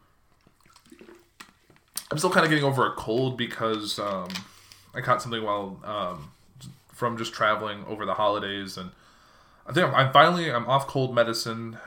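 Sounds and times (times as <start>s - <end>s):
person sipping sparkling water: 0.4s - 2.7s
sharp slurps: 0.5s - 1.5s
speech: 2.1s - 6.4s, 7.0s - 9.0s, 9.7s - 11.8s.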